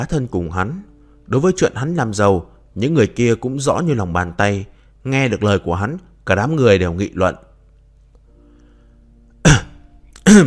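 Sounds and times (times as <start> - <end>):
speech: 0.0 - 7.5, 10.3 - 10.4
man clearing his throat to get a group's attention: 9.4 - 10.4.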